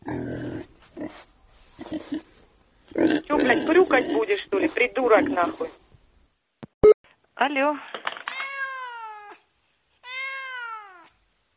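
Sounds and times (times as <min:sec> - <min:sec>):
speech: 0:03.5 - 0:05.8, 0:07.4 - 0:08.0
cat meowing: 0:08.3 - 0:11.2.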